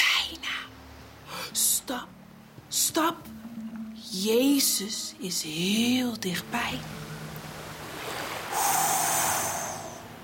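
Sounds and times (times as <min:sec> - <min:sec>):
rough stormy ocean waves: 0:00.0 - 0:10.2
speech: 0:01.9 - 0:02.2, 0:02.9 - 0:03.5, 0:04.1 - 0:07.2
wind blowing over a stormy ocean: 0:06.5 - 0:10.2.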